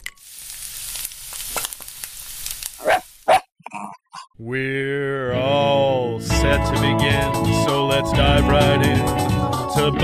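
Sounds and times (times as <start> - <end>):
steady sizzling hissing noise: 0.0 - 3.4
puppies barking and yipping: 2.8 - 3.4
speech: 4.4 - 5.4, 6.4 - 10.0.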